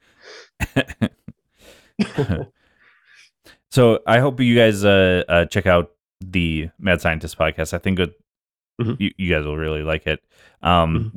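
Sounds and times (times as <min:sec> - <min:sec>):
breathy inhale: 0:00.0 - 0:00.6, 0:01.5 - 0:02.0, 0:02.6 - 0:03.6, 0:10.3 - 0:10.6
throat clearing and coughing: 0:02.0 - 0:02.5, 0:08.8 - 0:09.1
speech: 0:02.2 - 0:02.6, 0:03.7 - 0:08.2, 0:08.8 - 0:11.1.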